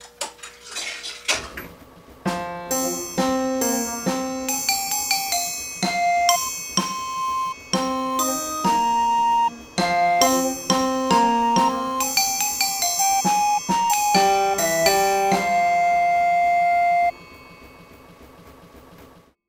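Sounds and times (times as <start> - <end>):
orchestrion playing: 2.3 - 17.1.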